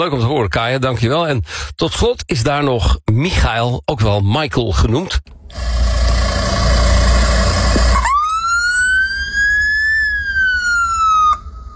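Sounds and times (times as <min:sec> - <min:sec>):
speech: 0:00.0 - 0:06.0
heavy rumbling noise: 0:05.5 - 0:08.1
Norwegian ambulance siren wailing: 0:07.5 - 0:11.7.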